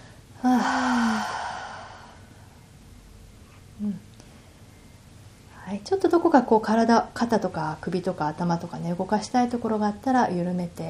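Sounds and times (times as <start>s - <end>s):
deep breath exhaled through the mouth during a guided relaxation exercise: 0.4s - 2.4s
speech: 5.8s - 10.8s.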